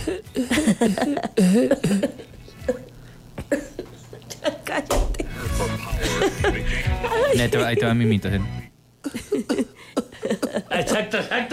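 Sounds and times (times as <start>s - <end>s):
laughter: 0.0s - 2.3s, 4.2s - 11.5s
speech: 0.0s - 2.3s, 7.4s - 8.7s
woman coughing: 0.0s - 6.4s, 9.0s - 11.1s.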